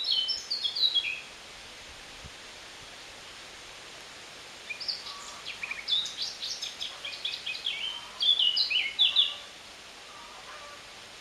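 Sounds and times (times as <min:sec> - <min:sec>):
Eurasian blackcap Sylvia atricapilla warbling song: 0:00.0 - 0:01.3, 0:04.7 - 0:09.4
background hiss: 0:00.0 - 0:11.1.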